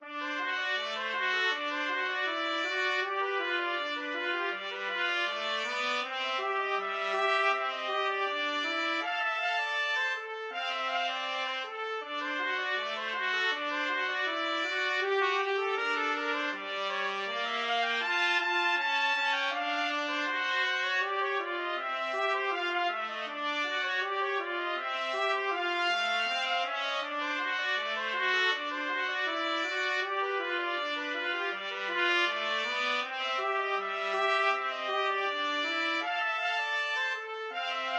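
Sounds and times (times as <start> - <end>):
trumpet duet: 0.0 - 37.9.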